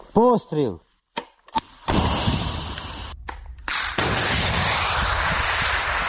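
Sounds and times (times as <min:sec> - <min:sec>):
speech: 0:00.2 - 0:00.8
anti-tank guided missile launcher launch blast: 0:01.9 - 0:06.0.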